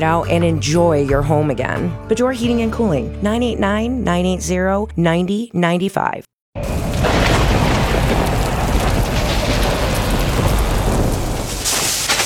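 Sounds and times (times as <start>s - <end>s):
speech: 0.0s - 6.8s
deep rumbling thunder: 6.6s - 12.2s
gusting wind: 6.6s - 12.2s
hail pounding: 6.6s - 12.2s
heavy rain: 6.6s - 12.2s.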